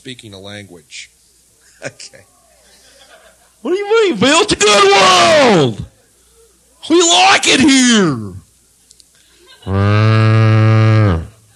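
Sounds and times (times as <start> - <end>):
speech: 0.0 - 1.2, 1.8 - 2.4, 3.6 - 5.9, 6.8 - 8.4, 9.6 - 10.2
laughter: 1.7 - 3.6, 9.3 - 9.9
cattle mooing: 9.7 - 11.4.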